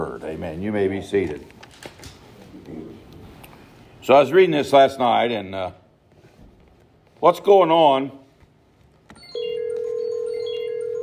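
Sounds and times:
speech: 0.2s - 1.6s, 4.0s - 5.8s, 7.2s - 8.2s
phone ringing with electronic tone: 9.2s - 11.0s.

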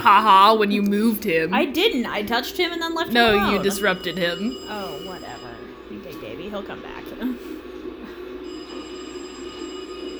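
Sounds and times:
speech: 0.0s - 5.6s, 6.5s - 7.4s
telephone ringing with a buzzing electronic tone: 3.0s - 6.3s, 8.2s - 10.1s.

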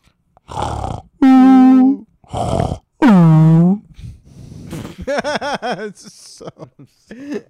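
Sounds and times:
person imitating snoring: 0.4s - 3.9s
laughter: 4.8s - 7.4s
speech: 5.7s - 7.4s.

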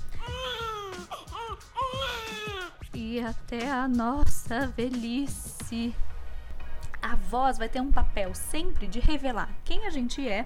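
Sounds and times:
newborn baby crying: 0.1s - 2.8s
speech: 3.2s - 6.0s, 7.1s - 10.4s.

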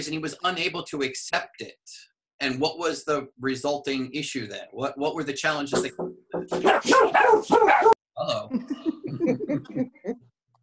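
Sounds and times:
speech: 0.0s - 10.2s
dog barking and yipping: 6.6s - 8.0s
laughter: 8.4s - 10.2s.

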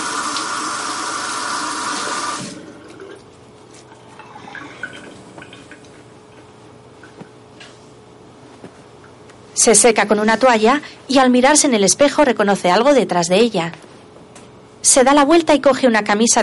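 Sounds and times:
tap water running at a bathroom sink while washing face: 0.0s - 3.2s
speech: 9.6s - 13.8s, 14.8s - 16.4s.

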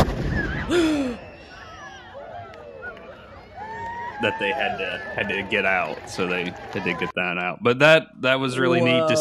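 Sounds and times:
old cannon being fired: 0.0s - 0.7s
crowd at an intersection with voices and excited shouts: 1.2s - 7.5s, 8.4s - 9.1s
speech: 4.2s - 9.1s.

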